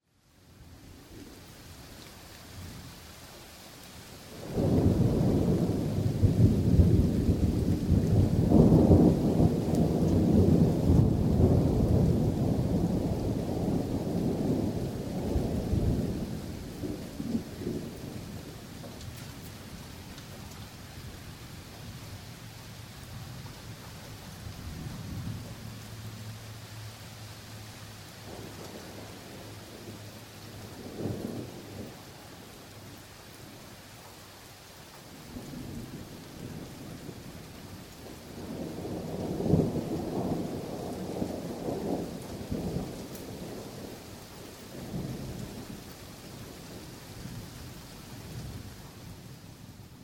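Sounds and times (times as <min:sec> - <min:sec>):
thunderstorm: 0:04.3 - 0:26.9, 0:27.6 - 0:33.7, 0:35.0 - 0:50.0.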